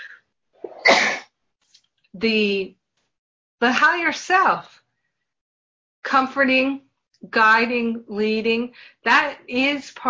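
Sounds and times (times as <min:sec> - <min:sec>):
person sneezing: 0:00.0 - 0:01.3
speech: 0:02.2 - 0:02.8, 0:03.6 - 0:04.8, 0:06.0 - 0:10.0.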